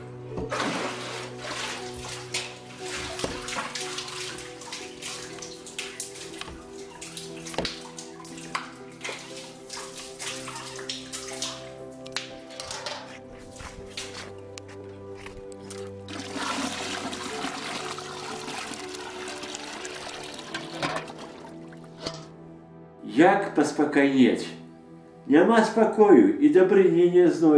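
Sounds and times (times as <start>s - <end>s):
water sloshing in a bucket drawn from a well: 0.4s - 14.4s, 15.7s - 22.3s
speech: 23.2s - 24.6s, 25.3s - 27.5s.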